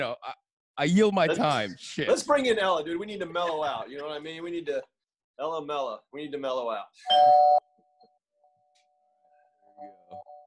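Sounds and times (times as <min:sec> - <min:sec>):
speech: 0:00.0 - 0:07.7, 0:09.8 - 0:10.3
doorbell chime: 0:07.1 - 0:07.7.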